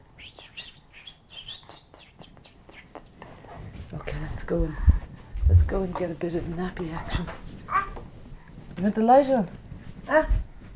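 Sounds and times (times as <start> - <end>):
soft hiss: 0.0 - 10.7
bird chirping outdoors: 0.2 - 3.2
speech: 4.5 - 4.9, 5.7 - 7.4, 8.8 - 10.4.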